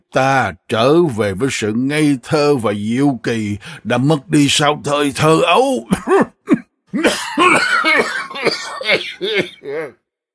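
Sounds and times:
speech: 0.1 - 10.0
man coughing: 5.8 - 10.0
laughter: 7.4 - 9.9.

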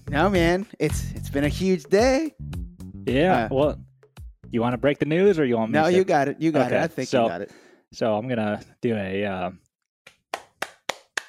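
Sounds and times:
speech: 0.1 - 3.8, 4.5 - 9.6
hand claps: 10.1 - 11.2.

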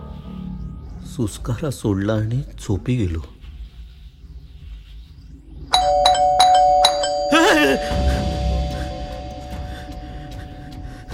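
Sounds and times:
speech: 1.2 - 3.4
electric doorbell ringing loudly in a house: 5.7 - 9.6
person calling out: 7.3 - 7.8.

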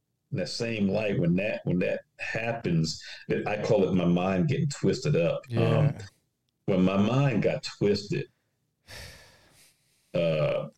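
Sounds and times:
speech: 0.3 - 8.3, 10.1 - 10.7
single long heavy breath: 8.9 - 10.2.

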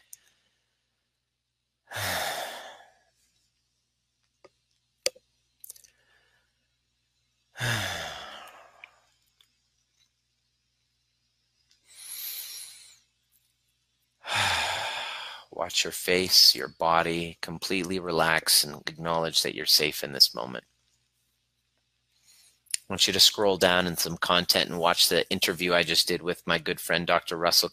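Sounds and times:
slow deep breathing during a guided relaxation exercise: 1.9 - 3.1, 5.8 - 6.7, 7.6 - 9.2, 11.9 - 13.0, 14.2 - 15.6
speech: 15.7 - 20.7, 22.9 - 27.7.

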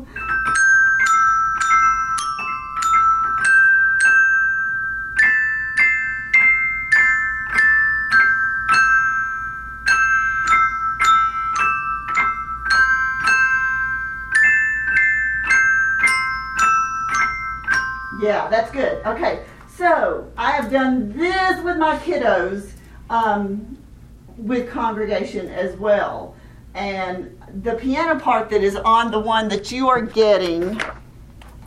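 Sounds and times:
set of bells struck with rubber sticks playing a melodic phrase: 0.0 - 19.6
speech: 18.6 - 23.7, 24.4 - 26.1, 26.8 - 30.9.

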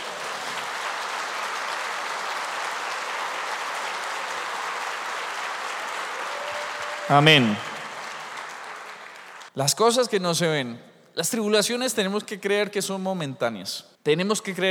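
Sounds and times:
audience applauding: 0.0 - 9.6
speech: 7.1 - 7.7, 9.6 - 14.6.

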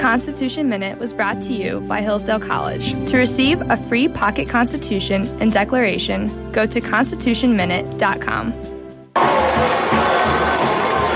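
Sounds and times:
speech: 0.1 - 8.7
stadium crowd roaring and cheering at a lead in a football game: 9.2 - 11.1.

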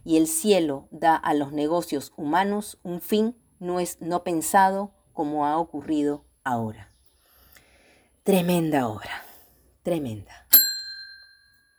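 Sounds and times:
speech: 0.1 - 6.9, 8.2 - 10.5
single bright metallic bell ding: 10.5 - 11.7.

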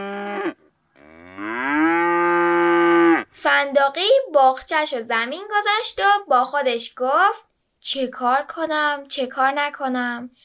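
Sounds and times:
large panicked cow mooing after giving birth to a calf: 0.0 - 3.3
speech: 3.4 - 10.4.

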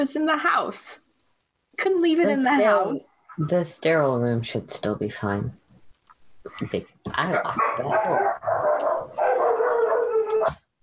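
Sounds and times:
speech: 0.0 - 1.0, 1.8 - 5.6, 6.4 - 8.9
pack of dogs howling and barking while chasing a cat: 7.3 - 10.7.

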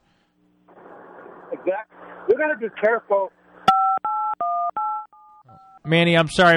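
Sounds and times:
speech: 1.5 - 3.4, 5.8 - 6.5
touch-tone keypad beeps from a cell phone: 3.7 - 5.9.

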